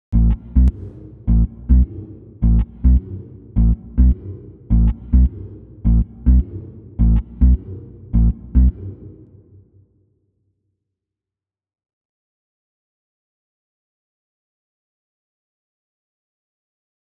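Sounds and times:
octave-up tail bass: 0:00.1 - 0:09.2.

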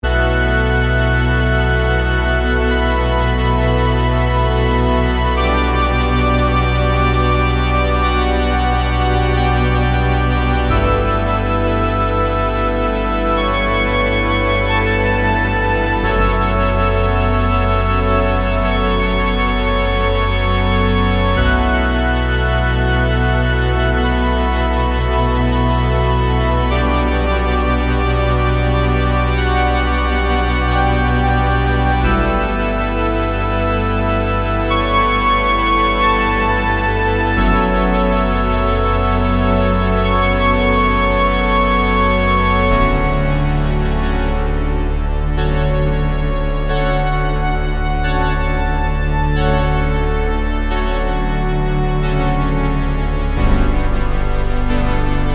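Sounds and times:
bass organ: 0:00.0 - 0:55.3.

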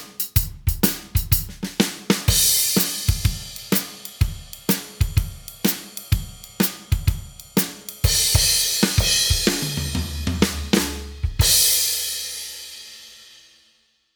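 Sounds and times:
simple shuffle beat: 0:00.3 - 0:11.7.

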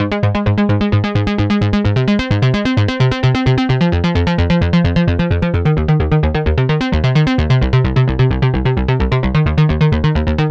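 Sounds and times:
dry synth bass: 0:00.0 - 0:10.4.

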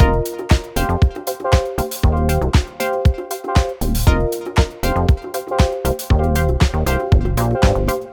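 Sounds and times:
mini bass legato: 0:00.0 - 0:01.0, 0:01.8 - 0:02.6, 0:03.8 - 0:05.2, 0:05.9 - 0:08.1.

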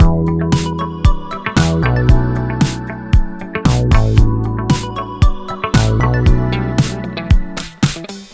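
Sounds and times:
rubber bass: 0:00.0 - 0:05.2, 0:05.8 - 0:07.6.

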